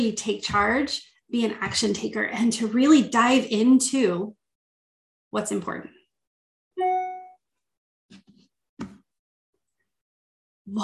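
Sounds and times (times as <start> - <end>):
speech: 0.0 - 4.4, 5.3 - 6.0, 10.7 - 10.8
bright notification ding: 6.8 - 7.4.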